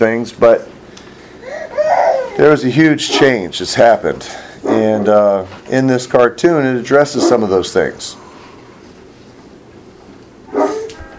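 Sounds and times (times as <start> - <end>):
speech: 0.0 - 0.7, 2.4 - 8.2
dog barking: 7.2 - 7.4, 10.5 - 11.0.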